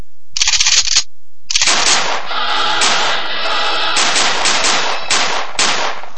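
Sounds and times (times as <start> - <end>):
automatic gunfire sound effect: 1.5 - 6.1.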